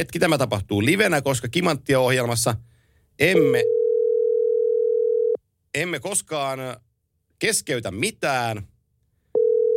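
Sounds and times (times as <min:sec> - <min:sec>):
speech: 0:00.0 - 0:03.8, 0:05.8 - 0:06.8, 0:07.4 - 0:08.7
telephone dial tone after a phone line drops: 0:03.6 - 0:05.4, 0:09.4 - 0:09.7.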